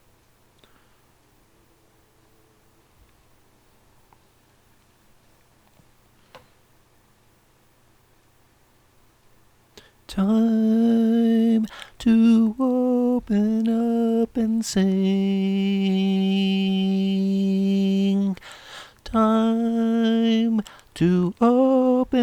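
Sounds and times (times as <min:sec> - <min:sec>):
classic vocal: 0:10.1 - 0:22.2.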